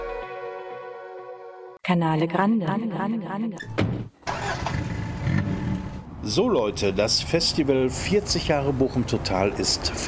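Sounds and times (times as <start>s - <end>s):
speech: 1.8s - 4.2s, 6.2s - 10.0s
car engine humming inside a vehicle driving along Kastroper Straße in Bochum: 4.2s - 7.4s.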